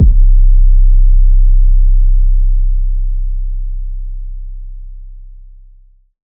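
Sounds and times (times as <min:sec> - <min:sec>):
kick drum: 0:00.0 - 0:00.3
808 sub bass: 0:00.0 - 0:06.1.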